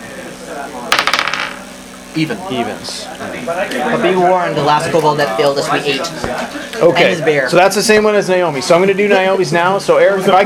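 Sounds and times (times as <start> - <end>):
dice rolled for odds and evens clattering onto a hard table: 0.9 - 1.6
speech: 2.1 - 10.4.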